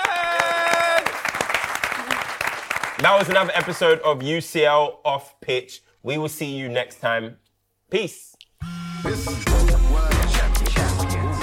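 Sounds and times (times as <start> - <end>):
small group clapping: 0.0 - 4.3
speech: 3.0 - 10.9.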